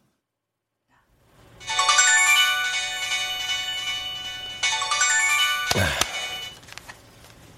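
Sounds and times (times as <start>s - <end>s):
mobile phone ringtone for an incoming call: 1.6s - 6.6s
speech: 5.8s - 6.0s.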